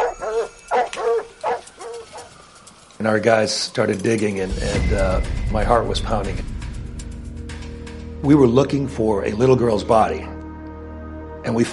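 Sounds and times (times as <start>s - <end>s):
cadaver dogs barking in a backyard: 0.0s - 2.5s
speech: 3.0s - 6.5s, 8.2s - 10.3s, 11.4s - 11.7s.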